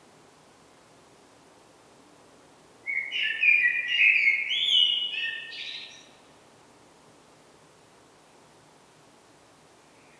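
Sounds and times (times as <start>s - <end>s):
faint background hiss: 0.0s - 10.1s
Common blackbird Turdus merula singing: 2.9s - 6.1s.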